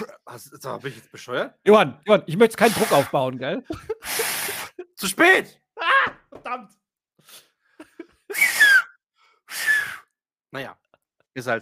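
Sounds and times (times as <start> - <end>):
speech: 0.3 - 4.2, 5.0 - 7.4, 10.5 - 10.8, 11.4 - 11.6
loud breathy wheezes with a thin whistling tone: 8.3 - 10.2.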